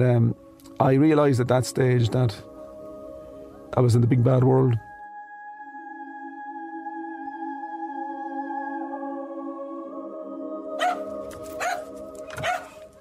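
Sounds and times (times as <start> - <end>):
speech: 0.0 - 2.5, 3.7 - 4.9
dog barking: 10.8 - 12.8.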